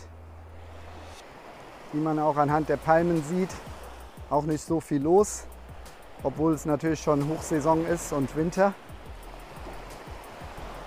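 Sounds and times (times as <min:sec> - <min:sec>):
low droning hum: 0:00.0 - 0:01.2
small waves lapping a calm Gulf beach near Naples: 0:00.0 - 0:10.8
speech: 0:01.9 - 0:03.7, 0:04.3 - 0:05.5, 0:06.2 - 0:08.8.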